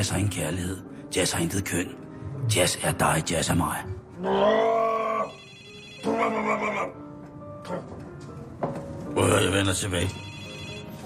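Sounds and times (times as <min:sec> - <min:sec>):
speech: 0:00.0 - 0:04.8, 0:06.0 - 0:07.0, 0:07.7 - 0:08.0, 0:08.6 - 0:10.2
telephone ringing in loud bursts: 0:05.3 - 0:06.4, 0:09.7 - 0:11.0.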